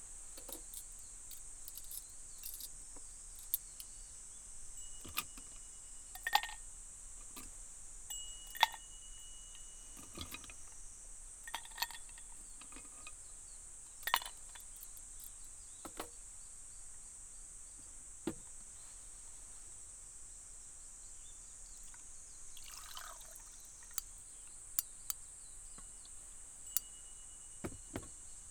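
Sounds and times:
faint high hiss: 0:00.0 - 0:28.4
ice cubes cracking in freshly poured cold barley tea: 0:22.6 - 0:24.0.

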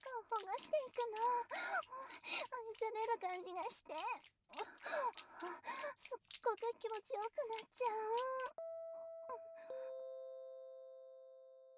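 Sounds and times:
speech: 0:00.2 - 0:08.6
two-tone doorbell chime at a home's front entrance: 0:08.6 - 0:11.7.

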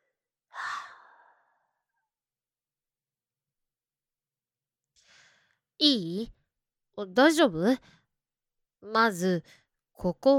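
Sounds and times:
deep breathing in and out: 0:00.5 - 0:01.8, 0:05.0 - 0:05.6
speech: 0:05.8 - 0:06.4, 0:07.0 - 0:08.0, 0:08.8 - 0:10.3.

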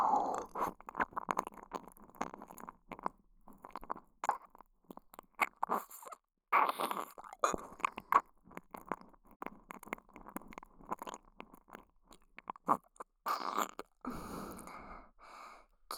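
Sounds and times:
wet tongue licking inside the ear: 0:00.2 - 0:14.7.

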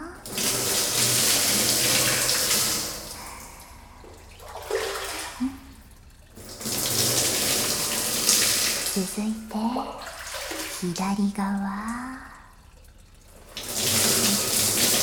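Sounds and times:
hot running water splashing to rinse in a bathroom: 0:00.0 - 0:15.0
speech: 0:09.0 - 0:10.1, 0:10.8 - 0:12.3.

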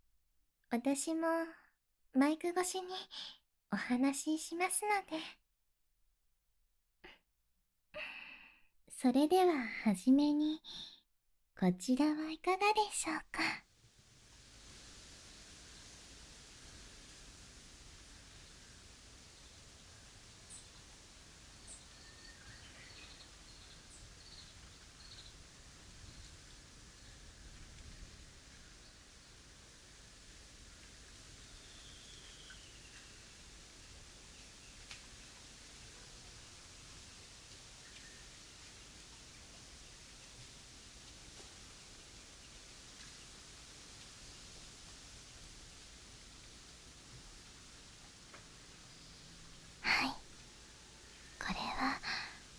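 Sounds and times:
speech: 0:00.7 - 0:05.4, 0:08.9 - 0:11.0, 0:11.6 - 0:13.6
wind rustling through trees in a forest: 0:11.9 - 0:52.5.

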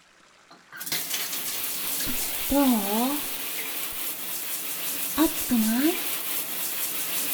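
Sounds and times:
hot water from a shower spraying over shoulders and belly: 0:00.8 - 0:07.3
speech: 0:02.5 - 0:03.3, 0:05.2 - 0:06.1.

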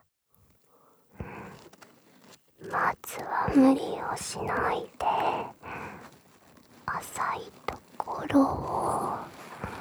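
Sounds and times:
slow deep breathing: 0:01.2 - 0:09.7
speech: 0:03.6 - 0:05.4, 0:08.3 - 0:09.0.

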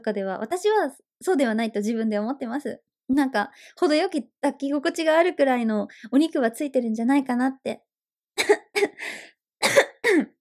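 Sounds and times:
speech: 0:00.0 - 0:10.3
harsh coughing fit: 0:08.4 - 0:09.0, 0:09.6 - 0:10.3.

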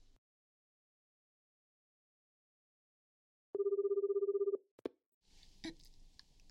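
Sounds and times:
telephone ringing with electronic trill at night: 0:03.6 - 0:04.6.

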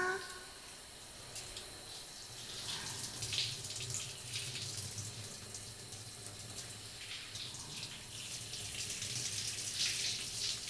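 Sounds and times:
shower water running for rinsing at a comfortable temperature: 0:01.2 - 0:10.6.

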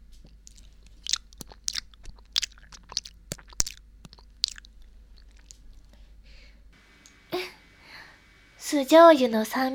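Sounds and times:
soft wet mouth sounds: 0:00.3 - 0:05.9
chewing crunchy raw fish: 0:00.3 - 0:06.0
speech: 0:08.7 - 0:09.7.

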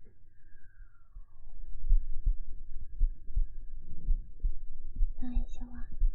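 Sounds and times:
faint falling tone: 0:00.0 - 0:04.2
heartbeat: 0:01.1 - 0:06.1.

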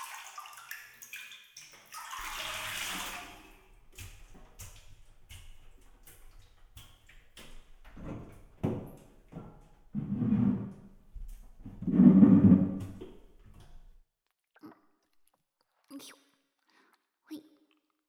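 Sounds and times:
water dripping: 0:00.0 - 0:09.9
water splashing as someone climbs out of a bathtub: 0:00.0 - 0:14.0.

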